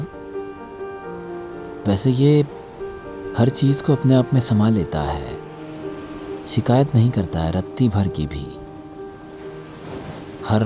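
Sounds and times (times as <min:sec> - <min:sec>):
sea waves washing ashore: 0:00.0 - 0:10.6
speech: 0:01.8 - 0:02.6, 0:03.4 - 0:05.4, 0:06.5 - 0:08.6, 0:10.5 - 0:10.6.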